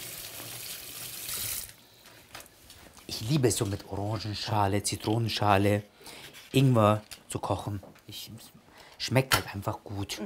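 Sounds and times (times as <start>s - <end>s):
hot running tap water rinsing an orange: 0.0s - 1.8s
speech: 3.2s - 10.2s.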